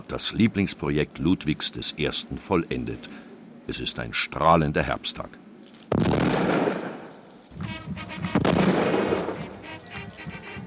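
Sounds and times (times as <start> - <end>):
speech: 0.1 - 6.2
ceremonial salute cannons firing heavy booms outdoors: 5.9 - 7.2, 8.2 - 9.6.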